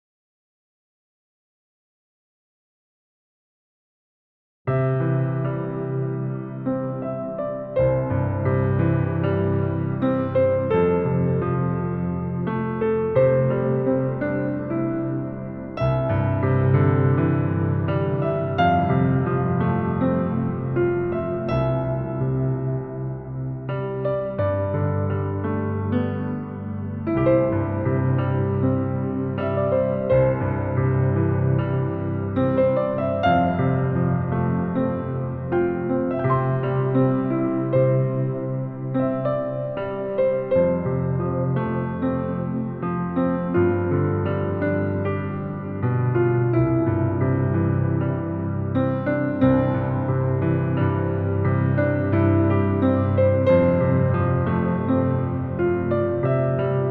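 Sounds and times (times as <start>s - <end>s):
piano improvisation: 4.7s - 56.8s.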